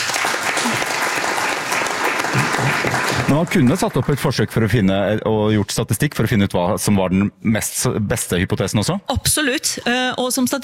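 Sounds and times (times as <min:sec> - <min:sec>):
applause from a small group: 0:00.0 - 0:04.9
speech: 0:03.3 - 0:10.6.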